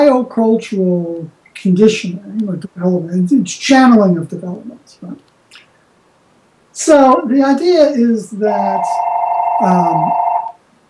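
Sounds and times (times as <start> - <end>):
speech: 0.1 - 5.3, 6.8 - 10.2
mobile phone ringing: 8.6 - 10.6.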